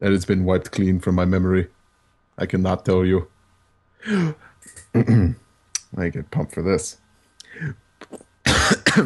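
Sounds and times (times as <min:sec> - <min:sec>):
speech: 0:00.0 - 0:01.8, 0:02.4 - 0:03.3, 0:04.0 - 0:08.3, 0:08.9 - 0:09.0
person coughing: 0:04.1 - 0:05.4, 0:08.5 - 0:09.0.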